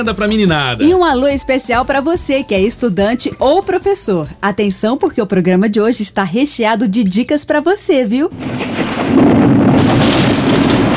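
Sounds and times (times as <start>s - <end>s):
sudden thunder in a thunderstorm: 0.0s - 6.1s, 8.3s - 10.9s
speech: 0.0s - 10.8s.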